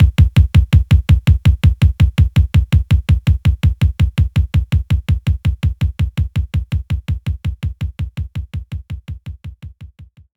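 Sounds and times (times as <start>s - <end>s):
standard kick drum: 0.0s - 10.3s.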